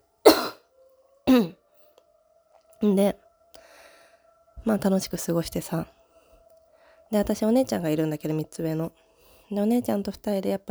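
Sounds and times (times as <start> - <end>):
faint steady hum: 0.1 - 10.7
person coughing: 0.3 - 0.6, 1.3 - 1.6
speech: 2.8 - 3.2, 4.7 - 6.0, 7.1 - 10.7.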